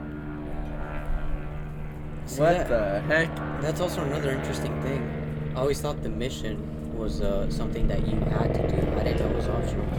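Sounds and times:
helicopter droning overhead: 0.0s - 9.9s
speech: 2.3s - 9.9s.

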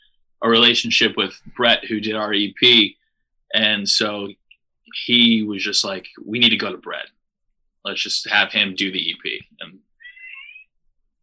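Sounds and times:
speech: 0.4s - 7.2s, 7.8s - 9.8s
cat meowing: 10.0s - 10.6s.

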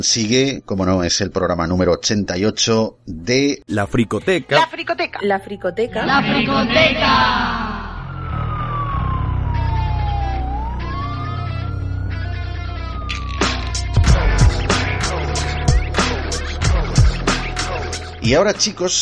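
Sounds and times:
speech: 0.0s - 7.8s, 18.3s - 19.0s
dense burst of clattering chaotic alarm effects: 5.2s - 18.3s
wailing siren alarm sound effect: 5.4s - 18.2s
rapid electronic pulsing: 13.0s - 18.5s.

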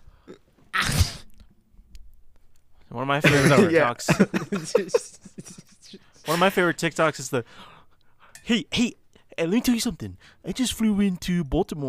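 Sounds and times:
person imitating a sneeze: 0.7s - 1.3s, 3.3s - 3.8s, 6.2s - 6.6s
speech: 3.0s - 5.2s, 6.3s - 7.7s, 8.5s - 11.8s
laughter: 3.3s - 6.8s.

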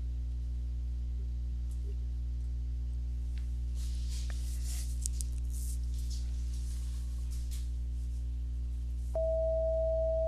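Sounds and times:
constant low electrical hum: 0.0s - 10.2s
steady pure 648 hertz tone: 9.1s - 10.2s.

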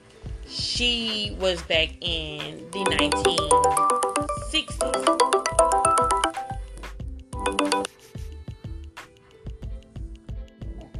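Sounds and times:
speech: 0.5s - 5.4s
phone ringtone for an incoming call: 2.8s - 6.7s, 7.4s - 8.0s.

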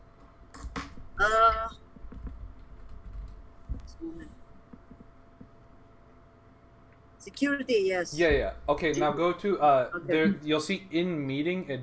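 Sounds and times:
faint hum: 0.0s - 11.8s
typing on a computer keyboard: 2.1s - 3.4s
speech: 7.3s - 11.8s.

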